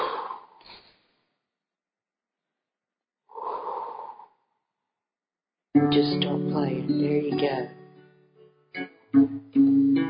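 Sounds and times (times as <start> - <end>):
deep breaths: 0.0 - 1.4, 3.3 - 4.5
speech: 5.8 - 7.8.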